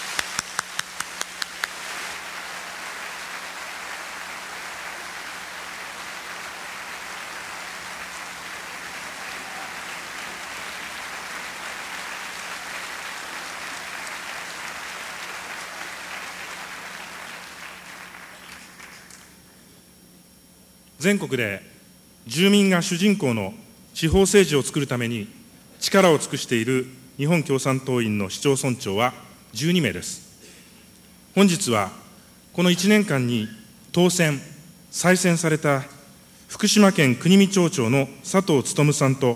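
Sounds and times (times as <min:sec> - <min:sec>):
large crowd applauding: 0:00.0 - 0:19.4
speech: 0:21.0 - 0:21.7, 0:22.3 - 0:30.2, 0:31.4 - 0:32.0, 0:32.6 - 0:39.3.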